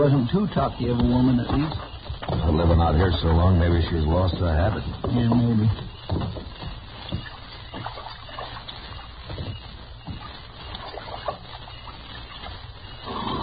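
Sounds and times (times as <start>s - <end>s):
speech: 0.0s - 7.3s
buckskin horse drinking water: 0.0s - 13.4s.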